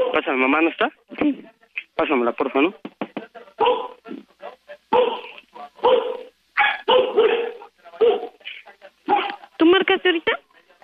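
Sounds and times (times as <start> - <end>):
dog barking: 0.0 - 0.3, 3.6 - 4.0, 4.9 - 8.4, 9.1 - 9.4
speech: 0.1 - 2.9.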